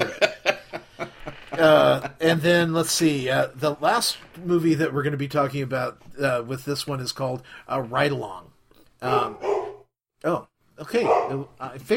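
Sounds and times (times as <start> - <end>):
laughter: 0.0 - 2.4
speech: 1.6 - 9.5, 10.2 - 11.9
pet dog barking: 9.1 - 9.9, 11.0 - 11.4.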